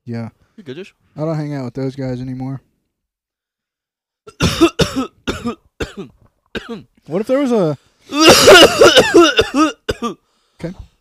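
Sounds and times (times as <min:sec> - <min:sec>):
speech: 0:00.0 - 0:02.7, 0:05.0 - 0:10.9
person coughing and clearing throat into a microphone: 0:04.3 - 0:06.9, 0:08.1 - 0:10.2.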